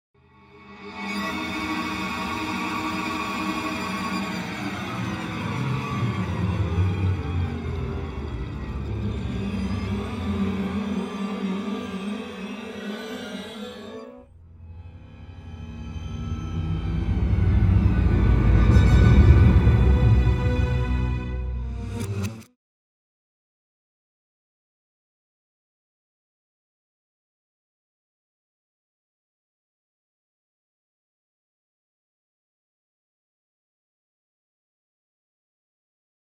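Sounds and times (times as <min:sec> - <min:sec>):
sinister string effect drones: 0:00.3 - 0:22.5.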